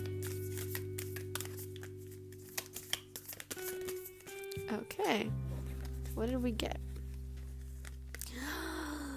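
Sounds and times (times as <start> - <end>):
oracle cards being shuffled: 0.0 - 8.4
speech: 4.7 - 5.5, 6.2 - 6.9.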